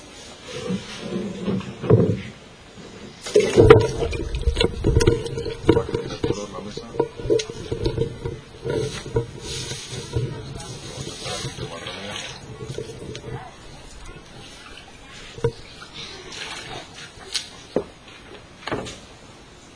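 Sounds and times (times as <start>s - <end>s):
handling noises: 0.0s - 19.2s
water pouring into a bucket of seeds to rinse them: 3.2s - 17.0s.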